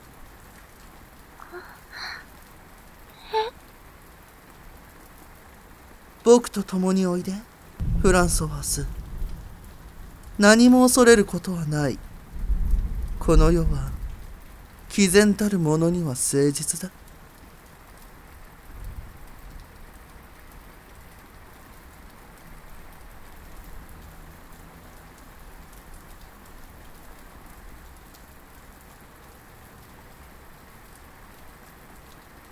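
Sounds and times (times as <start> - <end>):
heavy rain pattering on surfaces: 0.0 - 32.5
speech: 6.2 - 9.0, 10.4 - 12.1, 13.3 - 13.9, 15.0 - 17.0
faint low rumble: 7.8 - 15.2.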